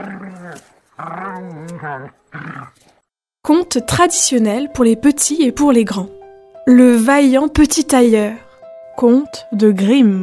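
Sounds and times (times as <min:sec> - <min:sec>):
pack of wolves growling and snarling: 0:00.0 - 0:03.0
speech: 0:00.0 - 0:08.4, 0:09.0 - 0:10.2.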